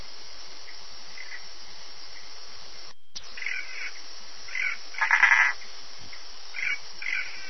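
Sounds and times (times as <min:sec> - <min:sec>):
Bokermannohyla hylax tree frog calling: 0:00.0 - 0:07.4
Bokermannohyla hylax tree frog pulsed rattling call: 0:00.6 - 0:02.4, 0:03.2 - 0:07.4.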